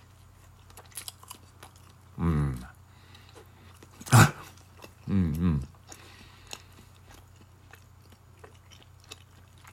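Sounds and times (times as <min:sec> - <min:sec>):
chewing food containing ham and cheese: 0:00.0 - 0:09.7
sharp bite-like crunch: 0:00.0 - 0:09.7
person humming mmm: 0:02.2 - 0:02.7, 0:04.0 - 0:05.7.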